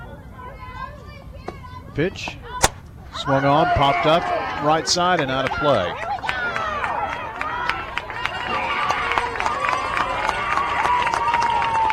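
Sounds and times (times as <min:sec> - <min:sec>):
speech: 0:02.0 - 0:02.4, 0:03.2 - 0:06.0
large crowd of sports fans cheering and shouting from the stands: 0:03.1 - 0:11.9
scattered clapping: 0:04.5 - 0:11.9.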